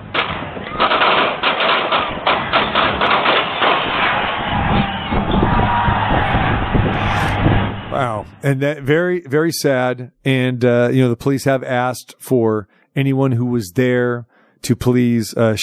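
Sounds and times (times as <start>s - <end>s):
gunfire bursts: 0.1s - 5.2s
chaotic crowd scrambling and shouting: 1.9s - 8.4s
speech: 8.0s - 15.6s.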